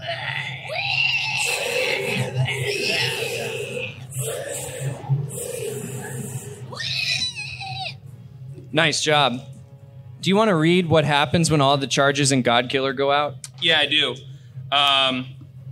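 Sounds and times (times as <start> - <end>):
monstrous creature writhing, shrieking and wailing: 0.0 - 8.0
speech: 8.8 - 9.5, 10.2 - 15.4.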